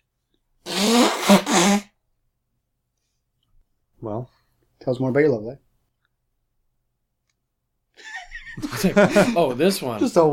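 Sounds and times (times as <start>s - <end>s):
person blowing nose: 0.6s - 2.0s
speech: 4.1s - 5.7s, 8.8s - 10.3s
laughter: 8.0s - 10.3s.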